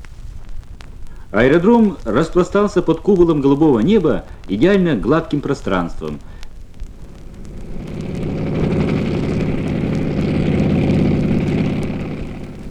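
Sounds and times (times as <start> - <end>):
speech: 1.3 - 6.4
Po-2 propeller biplane flying over an airfield: 6.8 - 12.6.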